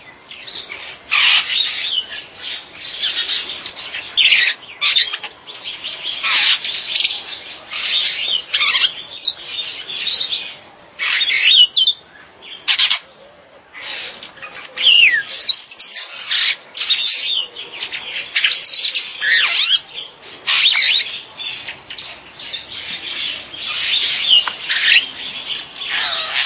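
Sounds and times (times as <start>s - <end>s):
birds chirping, trilling and whistling: 0.0s - 26.4s.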